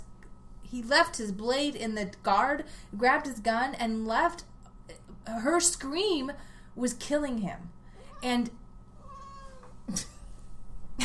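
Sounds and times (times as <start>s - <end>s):
steady low hum: 0.0s - 11.0s
speech: 0.7s - 8.6s, 9.9s - 10.1s
cat meowing: 8.0s - 8.4s, 9.0s - 9.8s.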